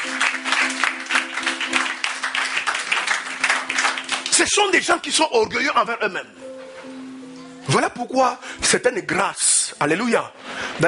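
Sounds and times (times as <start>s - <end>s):
church congregation applauding: 0.0s - 5.3s
speech: 4.4s - 6.4s, 7.7s - 10.8s.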